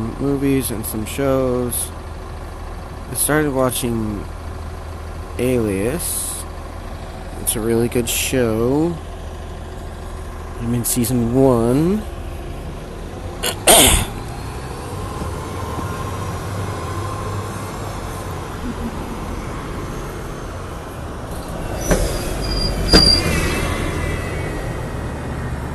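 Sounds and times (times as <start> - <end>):
large bus driving past: 0.0 - 25.7
speech: 0.2 - 2.0, 3.1 - 4.4, 5.4 - 6.3, 7.5 - 9.1, 10.6 - 12.1
squeals: 21.3 - 25.4.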